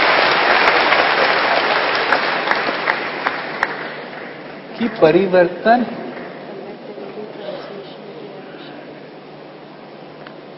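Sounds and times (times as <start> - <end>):
crowd applauding: 0.0 - 4.5
speech: 4.8 - 6.0.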